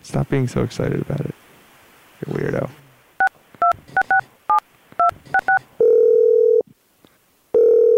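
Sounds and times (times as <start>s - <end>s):
speech: 0.1s - 1.4s, 2.2s - 2.8s
phone keypad touch tones: 3.2s - 6.6s
telephone ringing tone: 5.0s - 6.6s, 7.5s - 7.9s.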